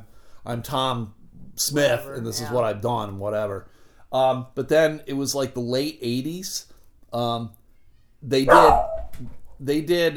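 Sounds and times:
speech: 0:00.4 - 0:07.6, 0:08.2 - 0:10.1
female dog barking with slight howling: 0:08.5 - 0:09.2.

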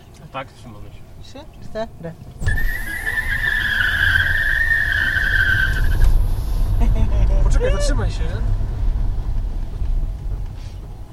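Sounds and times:
steady low car engine rumble: 0:00.0 - 0:11.1
speech: 0:00.3 - 0:02.8, 0:07.6 - 0:08.6
car tires screeching as car accelerates away: 0:02.3 - 0:11.1.

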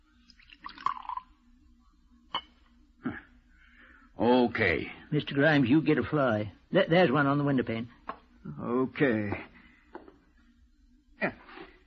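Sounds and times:
liquid poured into a glass tumbler: 0:00.1 - 0:01.6
light clinks of glass: 0:02.3 - 0:02.6
speech: 0:04.2 - 0:09.5.

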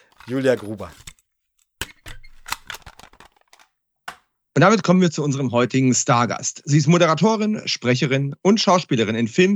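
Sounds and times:
cassette tape unwrapped and inserted into a player, plastic clicks and rattles: 0:00.0 - 0:04.2
speech: 0:00.3 - 0:01.1, 0:04.6 - 0:09.5.

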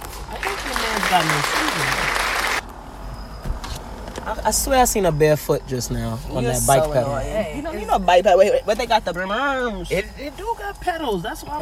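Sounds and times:
voices calling out: 0:00.2 - 0:11.6
small group clapping: 0:00.3 - 0:02.6
speech: 0:01.1 - 0:02.0, 0:04.5 - 0:11.6.

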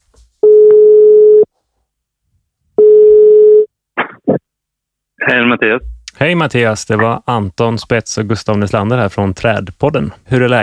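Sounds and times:
telephone call ringing tone: 0:00.4 - 0:01.5, 0:02.8 - 0:03.7
speech: 0:05.3 - 0:10.6.

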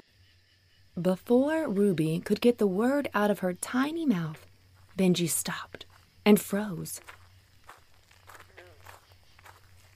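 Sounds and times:
speech: 0:01.0 - 0:07.2
footsteps crunching at a walking pace: 0:04.3 - 0:09.9.

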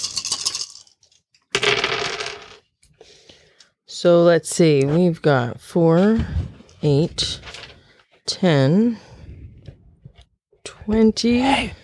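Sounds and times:
dice spilling and rolling on a hard tabletop in a tabletop game: 0:00.0 - 0:00.9, 0:01.5 - 0:02.6
speech: 0:04.0 - 0:07.5, 0:08.3 - 0:09.1, 0:10.9 - 0:11.8.

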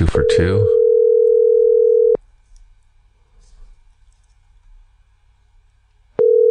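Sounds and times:
speech: 0:00.1 - 0:00.8
outgoing call ringback tone electronic purr: 0:00.7 - 0:02.2, 0:06.2 - 0:06.4.

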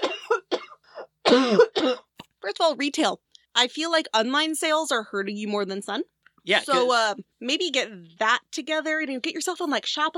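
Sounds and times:
person coughing with harsh rasping hacks: 0:00.0 - 0:02.2
speech: 0:01.3 - 0:02.0, 0:02.6 - 0:10.1.

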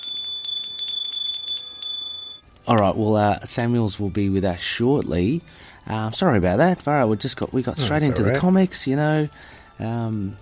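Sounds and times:
bell rung to summon service: 0:00.0 - 0:02.4
speech: 0:02.7 - 0:10.4.

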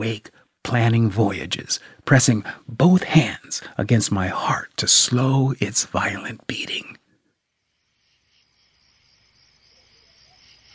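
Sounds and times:
speech: 0:00.0 - 0:07.0
crickets chirping at night: 0:07.2 - 0:10.7.

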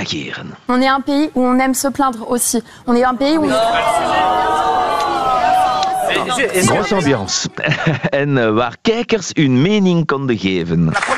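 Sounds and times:
speech: 0:00.0 - 0:04.8, 0:06.1 - 0:11.1
studio audience at a televised debate shouting and cheering: 0:03.1 - 0:07.6
laughter: 0:03.4 - 0:08.4.

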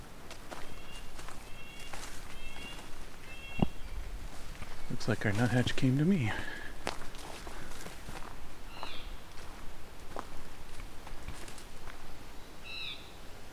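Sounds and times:
steady crunching footsteps: 0:00.0 - 0:12.2
busy outdoor background: 0:00.0 - 0:13.5
blue jay giving harsh calls: 0:00.7 - 0:04.0, 0:12.6 - 0:13.1
speech: 0:05.0 - 0:06.6.

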